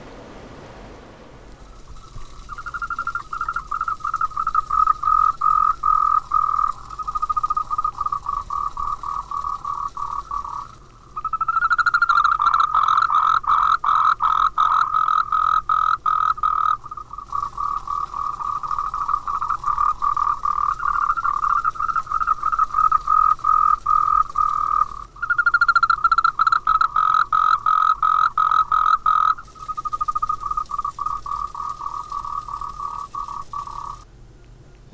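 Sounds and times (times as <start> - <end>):
frogs croaking: 1.6 - 34.1.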